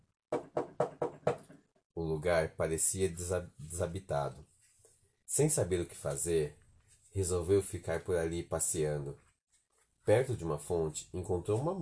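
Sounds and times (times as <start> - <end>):
firm knocks on the door of a golden castle: 0.3 - 1.6
speech: 2.2 - 4.5, 5.4 - 9.2, 10.1 - 11.8.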